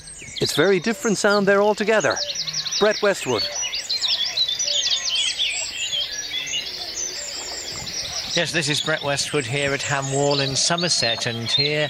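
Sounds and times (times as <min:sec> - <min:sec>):
cuckoo calling: 0:00.0 - 0:11.8
reed warblers singing in a Somerset reedbed nature reserve at dawn: 0:00.0 - 0:11.8
speech: 0:00.4 - 0:03.6, 0:08.4 - 0:11.8.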